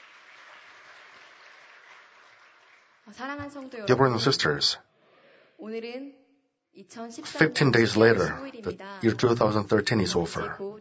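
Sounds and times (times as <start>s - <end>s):
church audience applauding: 0.0s - 3.1s
speech: 3.1s - 4.8s, 5.6s - 6.2s, 6.8s - 10.7s.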